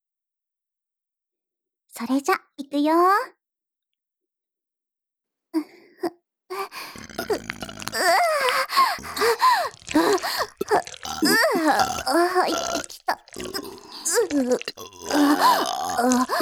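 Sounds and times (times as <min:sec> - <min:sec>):
speech: 0:02.0 - 0:03.4, 0:05.5 - 0:16.4
gasps for breath: 0:06.5 - 0:16.4
person burping: 0:06.8 - 0:16.4.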